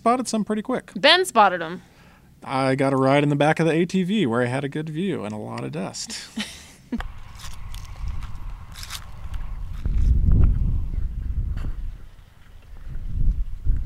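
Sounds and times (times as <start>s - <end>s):
speech: 0.0s - 7.1s
horses walking with hooves clip-clopping: 7.0s - 13.8s
low outdoor rumble: 7.0s - 13.8s.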